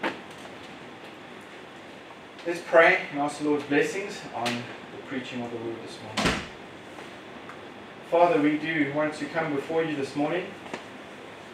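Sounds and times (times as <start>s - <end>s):
steady hush of room noise: 0.0s - 11.5s
speech: 2.4s - 6.5s, 8.1s - 10.6s
door swinging shut with a soft thump: 6.2s - 6.6s.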